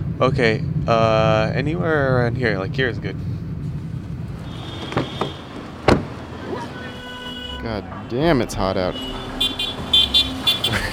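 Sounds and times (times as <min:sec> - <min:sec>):
street traffic engine drone on a hot morning: 0:00.0 - 0:10.9
speech: 0:00.2 - 0:03.4, 0:07.6 - 0:09.2
car horn toots: 0:04.4 - 0:05.8, 0:06.4 - 0:07.9, 0:08.8 - 0:10.9.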